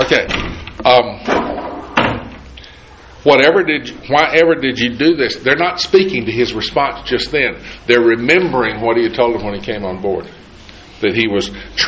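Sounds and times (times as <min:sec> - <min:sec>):
speech: 0:00.0 - 0:01.4, 0:03.2 - 0:10.4, 0:11.0 - 0:11.8
wooden door pushed shut with knocking, rattling bumps: 0:01.3 - 0:02.4.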